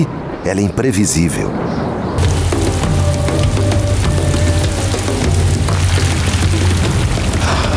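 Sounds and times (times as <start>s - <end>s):
speech: 0.0s - 1.9s
low rumbling drone: 2.2s - 7.7s
sudden late-spring rain shower: 2.2s - 7.7s.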